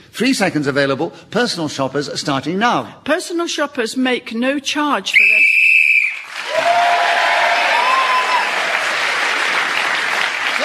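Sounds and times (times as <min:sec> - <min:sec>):
speech: 0:00.2 - 0:05.6
whistle blast blown to end a round: 0:05.2 - 0:06.2
loud sustained crowd applause: 0:06.0 - 0:10.6.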